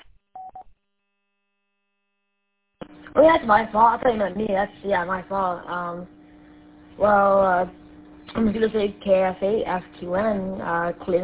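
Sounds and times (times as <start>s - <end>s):
telephone number dialed with touch-tone keys: 0.4s - 0.6s
speech: 3.2s - 6.2s, 7.0s - 7.8s, 8.4s - 11.2s.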